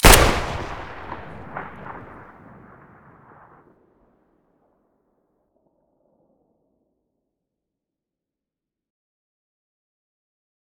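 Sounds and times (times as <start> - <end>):
Saiga weapon muzzle blast: 0.0 - 2.2.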